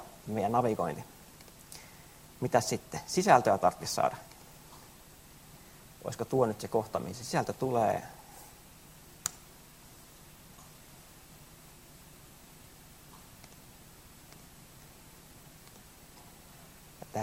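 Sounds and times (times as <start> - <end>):
steady soft hiss: 0.0 - 17.2
speech: 0.3 - 1.2, 2.4 - 4.3, 6.0 - 8.2
computer mouse clicking in a web editor: 13.4 - 13.6, 15.6 - 15.9.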